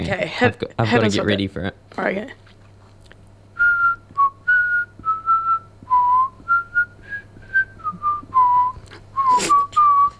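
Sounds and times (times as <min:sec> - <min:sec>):
faint steady hum: 0:00.0 - 0:10.1
speech: 0:00.1 - 0:02.4
person whistling the chorus of a classic song: 0:03.6 - 0:10.1.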